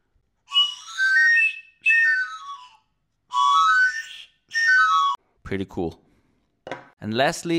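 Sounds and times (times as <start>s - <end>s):
3D printed multi-tone whistle being blown: 0.5s - 5.2s
speech: 5.5s - 6.1s, 7.0s - 7.5s.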